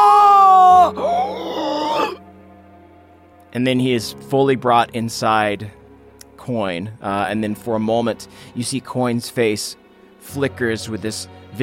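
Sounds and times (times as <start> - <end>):
human voice imitating the scream of a character being engulfed: 0.0 - 2.2
speech: 3.6 - 5.8, 6.4 - 11.6.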